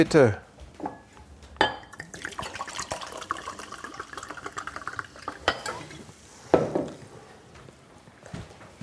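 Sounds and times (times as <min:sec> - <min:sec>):
speech: 0:00.0 - 0:00.4
glass clinking: 0:01.6 - 0:06.0
water poured from a nearly empty bottle into a glass: 0:01.9 - 0:06.1.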